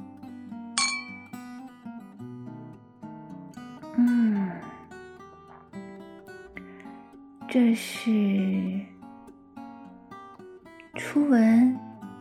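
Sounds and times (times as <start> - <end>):
glasses clinking in a toast: 0.8 - 1.4
soft music: 3.4 - 12.1
speech: 4.0 - 4.4, 7.5 - 8.9, 11.0 - 12.1.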